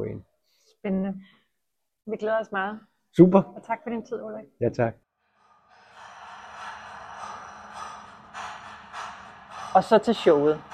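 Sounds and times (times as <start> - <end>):
speech: 0.0 - 1.4, 2.1 - 5.0, 9.8 - 10.7
heavy breathing in a composed soundtrack: 5.2 - 10.7
steady airy wash: 5.4 - 10.7.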